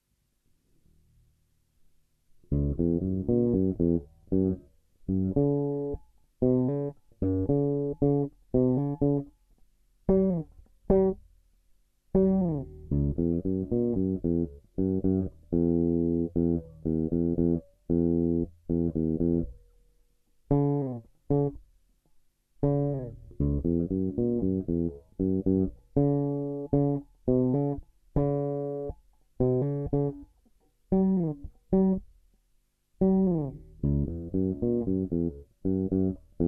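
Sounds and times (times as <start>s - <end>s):
jazz bass with treble turned down: 2.5s - 9.3s, 10.1s - 11.2s, 12.1s - 19.6s, 20.5s - 21.6s, 22.6s - 30.2s, 33.0s - 36.4s.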